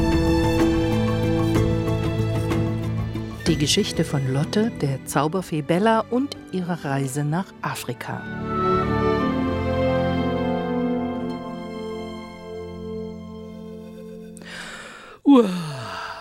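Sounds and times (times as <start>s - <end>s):
sustained gentle music: 0.0s - 15.0s
speech: 3.5s - 8.7s, 15.3s - 15.7s
child yawning loudly: 14.5s - 16.1s.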